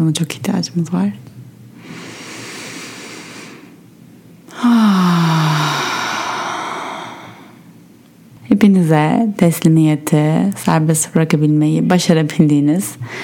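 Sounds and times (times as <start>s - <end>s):
speech: 0.0s - 2.0s, 8.6s - 13.2s
long airy inhale through the nose: 1.8s - 3.8s, 4.5s - 7.6s, 13.0s - 13.2s.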